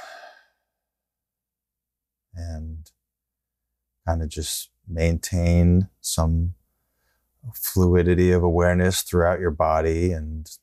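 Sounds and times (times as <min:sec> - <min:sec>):
breathy exhale during a guided relaxation exercise: 0:00.0 - 0:00.6
speech: 0:02.4 - 0:03.0, 0:04.0 - 0:06.6, 0:07.4 - 0:10.6.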